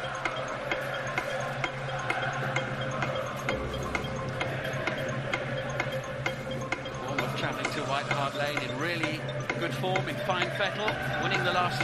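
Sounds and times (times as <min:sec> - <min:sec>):
countdown clock ticking: 0:00.0 - 0:11.8
constant low electronic hum: 0:03.5 - 0:05.1
speech: 0:08.0 - 0:11.8.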